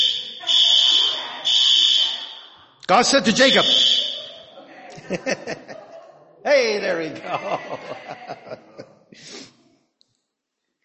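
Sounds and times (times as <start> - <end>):
electronic alarm beeping with long shrill high tones: 0.0 - 4.6
speech: 2.9 - 4.0, 5.1 - 5.8, 6.4 - 9.4
laughter: 3.1 - 9.4.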